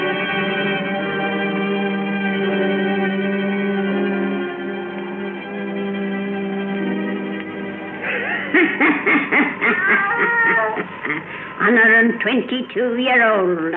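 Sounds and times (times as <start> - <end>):
sustained eerie musical drone: 0.0 - 12.9
laughter: 8.0 - 11.4
black cat meowing: 9.6 - 10.9
speech: 11.6 - 13.7.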